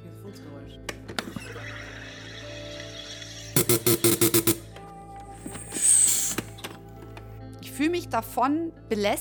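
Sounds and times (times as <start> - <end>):
home soda maker carbonating water with buzzing bursts: 1.4 - 4.7, 5.4 - 6.6
sharp hiss of soda maker pressure release: 3.6 - 4.6, 5.4 - 6.7
speech: 7.8 - 9.1.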